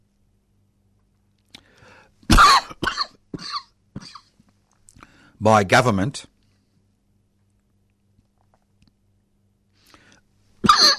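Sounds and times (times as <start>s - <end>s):
man coughing half-stifled: 2.3s - 4.3s, 10.6s - 10.9s
speech: 5.4s - 6.3s.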